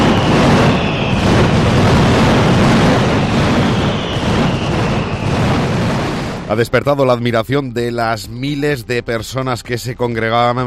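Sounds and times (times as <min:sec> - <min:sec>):
mascletà firecracker barrage explosions: 0:00.0 - 0:06.6
speech: 0:06.5 - 0:10.6.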